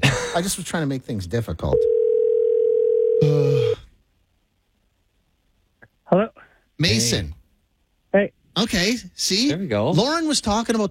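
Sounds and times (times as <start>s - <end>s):
speech: 0.4s - 2.0s, 6.1s - 7.4s, 8.1s - 10.8s
telephone dial tone while a call is being placed: 1.8s - 3.2s.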